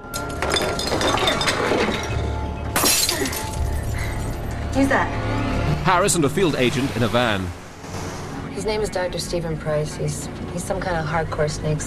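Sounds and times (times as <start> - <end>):
wine bottle being smashed: 0.0 - 4.5
speech: 4.8 - 7.6, 8.6 - 11.8.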